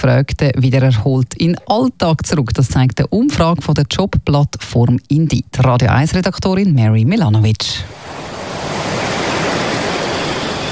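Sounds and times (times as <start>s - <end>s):
speech: 0.0s - 8.3s
ocean waves washing onto a beach: 7.9s - 10.7s.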